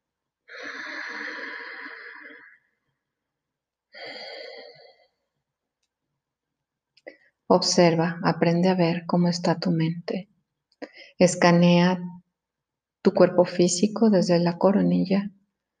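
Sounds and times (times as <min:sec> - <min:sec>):
long deep breaths during a guided meditation: 0:00.5 - 0:02.7, 0:03.9 - 0:05.3
speech: 0:07.5 - 0:10.3, 0:11.2 - 0:12.2, 0:13.0 - 0:15.4.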